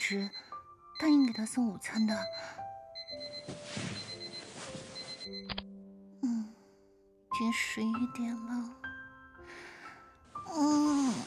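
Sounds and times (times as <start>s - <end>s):
alarm clock ringing with shrill electronic tone: 0.0s - 5.5s
speech: 0.1s - 0.4s, 1.0s - 2.6s, 7.4s - 8.8s, 10.5s - 11.2s
short beeps: 1.0s - 5.6s.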